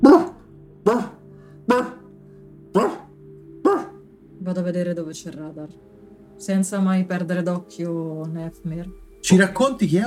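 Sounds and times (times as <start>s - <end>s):
dog barking: 0.0s - 2.1s, 2.8s - 4.0s
speech: 0.8s - 2.0s, 4.5s - 10.0s.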